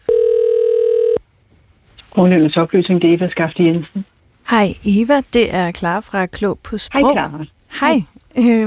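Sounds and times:
steady telephone ringing tone of a call to a question line: 0:00.0 - 0:01.2
speech: 0:02.2 - 0:08.6.

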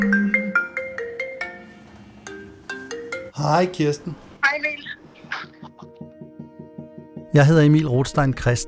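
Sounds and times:
phone ringtone with a quick bright electronic melody: 0:00.0 - 0:03.4
speech: 0:03.4 - 0:04.2, 0:07.4 - 0:08.6.

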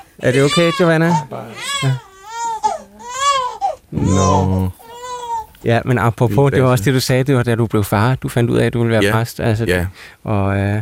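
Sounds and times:
newborn baby crying in wavering wails: 0:00.0 - 0:05.6
speech: 0:00.2 - 0:02.1, 0:03.9 - 0:04.8, 0:05.6 - 0:10.7.

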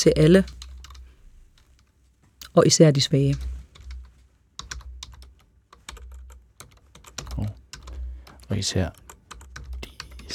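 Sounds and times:
speech: 0:00.0 - 0:00.6, 0:02.6 - 0:03.5, 0:08.5 - 0:09.0
low hum: 0:00.0 - 0:10.3
typing on computer keyboard: 0:00.2 - 0:01.1, 0:03.2 - 0:10.3.

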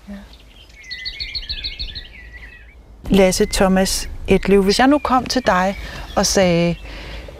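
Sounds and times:
low outdoor rumble: 0:00.0 - 0:07.3
common whitethroat singing scratchy chattering notes: 0:00.3 - 0:07.3
speech: 0:03.1 - 0:06.8.

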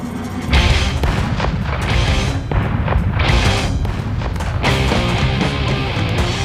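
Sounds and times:
heavy gunfire among trees: 0:00.5 - 0:06.4.

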